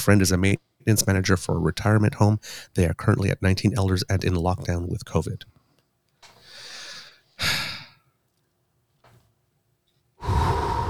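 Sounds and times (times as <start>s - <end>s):
speech: 0.0s - 5.6s
deep breathing exercise: 6.4s - 7.9s, 10.2s - 10.8s.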